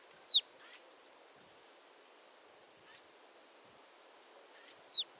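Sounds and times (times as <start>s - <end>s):
Poecile palustris marsh tit giving down-slurred notes: 0.2s - 0.4s, 4.9s - 5.1s.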